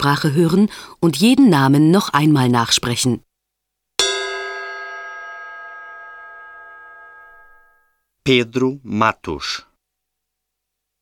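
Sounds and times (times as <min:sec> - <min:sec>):
speech: 0:00.0 - 0:03.3, 0:08.2 - 0:09.7
gong stroke ringing: 0:04.0 - 0:07.9.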